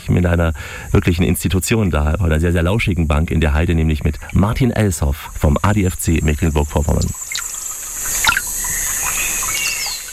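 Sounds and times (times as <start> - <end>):
speech: 0.1 - 7.2
running water trickling beside a bench in a heath forest in Germany: 3.8 - 10.1
small bird chirps: 6.7 - 10.1.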